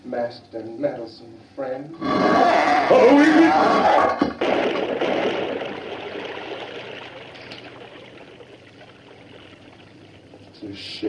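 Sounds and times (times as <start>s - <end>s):
speech: 0.1s - 5.1s, 10.7s - 11.0s
water pouring into a well: 4.4s - 10.6s.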